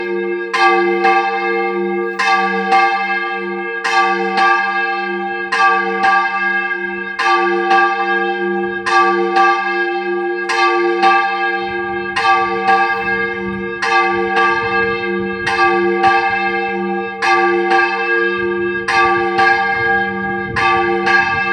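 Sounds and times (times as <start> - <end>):
church bells: 0.0 - 21.5.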